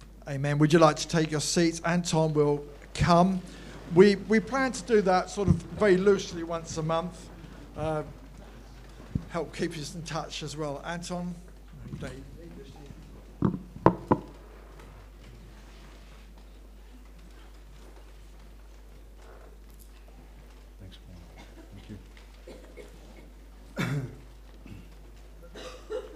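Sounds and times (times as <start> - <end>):
speech: 0.3 - 8.2, 9.3 - 12.3
microphone bumps: 5.4 - 6.1, 9.0 - 9.4, 13.0 - 14.9
cough into microphone: 21.3 - 26.1.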